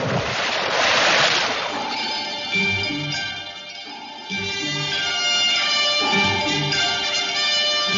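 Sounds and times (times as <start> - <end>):
splash of someone plunging into the sea: 0.0 - 2.4
churning sea water: 0.0 - 7.9
steady tonal music: 1.4 - 7.9.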